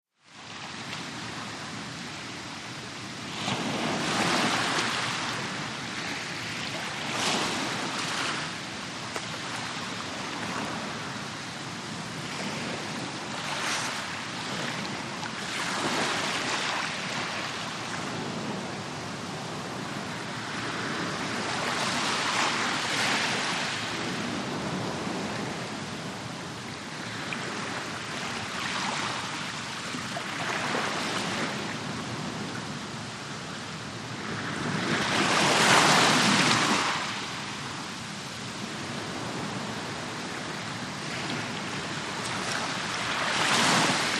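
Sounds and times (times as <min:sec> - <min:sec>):
close-up waves and surf: 0:00.2 - 0:44.1.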